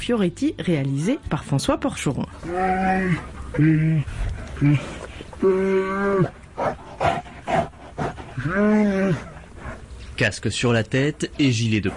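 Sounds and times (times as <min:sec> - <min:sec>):
speech: 0:00.0 - 0:07.6, 0:08.4 - 0:09.3, 0:10.2 - 0:11.9
bears grunting huffs: 0:02.4 - 0:09.9
stressed caged bears wailing and roaring in South Korea: 0:02.4 - 0:09.9.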